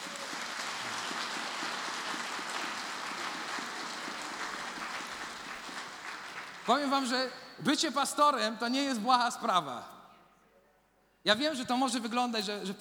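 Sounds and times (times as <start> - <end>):
church audience applauding to welcome pastors: 0.0 - 7.4
speech: 6.7 - 10.0, 11.2 - 12.7.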